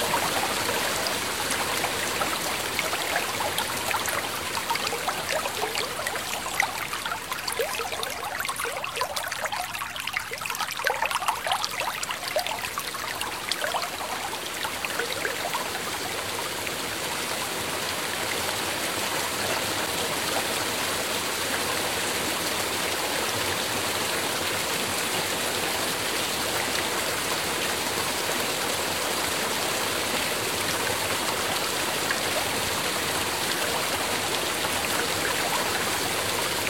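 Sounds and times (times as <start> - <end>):
bright water splashes and spatters: 0.0 - 16.9, 30.1 - 36.6
natural water running steadily like a stream over stones: 0.0 - 36.6.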